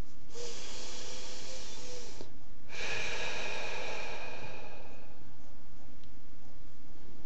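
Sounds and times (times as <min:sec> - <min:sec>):
deep even breathing: 0:00.3 - 0:05.4.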